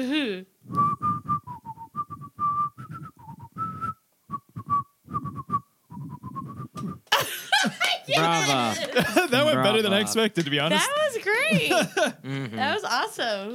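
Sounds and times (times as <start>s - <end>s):
speech: 0.0s - 0.9s, 8.2s - 13.5s
person whistling a tune: 0.7s - 7.0s
laughter: 7.1s - 10.3s, 11.4s - 12.8s
breathy vocal sounds: 12.2s - 12.7s.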